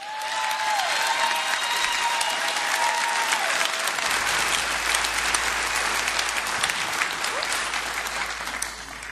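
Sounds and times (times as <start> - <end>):
faint whistles and cheers: 0.0 - 9.1
large crowd applauding: 0.0 - 9.1.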